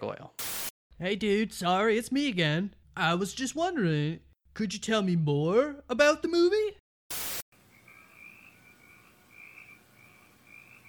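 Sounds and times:
loud burst of static: 0.4s - 0.7s, 7.1s - 7.5s
speech: 1.0s - 6.8s
crickets chirping: 7.6s - 10.8s.

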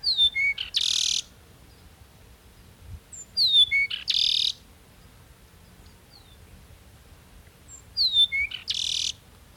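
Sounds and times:
Peruvian meadowlark Leistes bellicosus singing in Ecuador: 0.0s - 1.8s, 3.1s - 4.6s, 6.1s - 6.4s, 7.7s - 9.5s
faint hiss: 0.0s - 9.5s.

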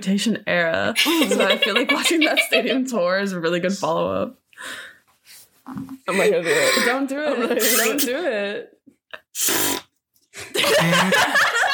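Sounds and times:
speech: 0.0s - 4.9s, 5.7s - 8.8s, 9.4s - 9.6s, 10.6s - 11.5s
laughter: 1.0s - 2.9s, 10.4s - 11.7s
fart: 9.4s - 9.9s.

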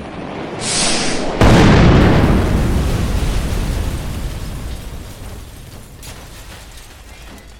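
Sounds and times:
tank blown up by its own missiles: 0.0s - 7.0s
hissing rush of missiles: 0.5s - 3.8s.

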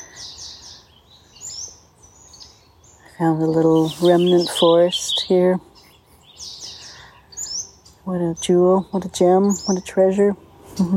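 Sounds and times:
several birds chirping in a small remnant forest during the day: 0.0s - 10.9s
soft woodland ambience: 0.0s - 10.9s
speech: 3.2s - 5.7s, 8.1s - 10.9s.

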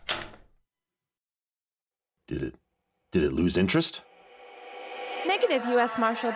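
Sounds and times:
door unlocking and opening: 0.0s - 0.6s
speech: 2.3s - 4.1s, 5.2s - 6.3s.

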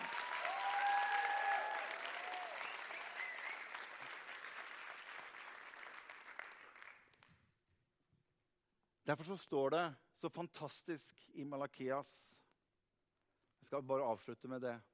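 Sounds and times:
crowd whistles and cheers: 0.0s - 4.1s
crowd applause: 0.0s - 7.2s
speech: 9.1s - 12.4s, 13.6s - 14.9s.

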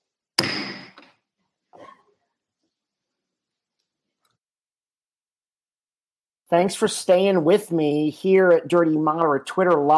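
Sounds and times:
gavel banging down to declare recess: 0.4s - 1.1s
speech: 6.5s - 9.9s.

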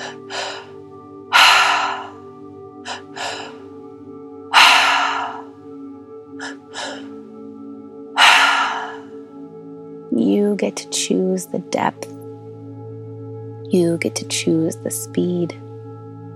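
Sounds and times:
forceful active breathing through the mouth during a three-part breathwork exercise: 0.0s - 3.8s, 4.5s - 5.6s, 6.4s - 7.2s, 8.2s - 9.2s
steady low musical drone: 0.0s - 16.3s
speech: 10.2s - 12.2s, 13.7s - 15.6s.

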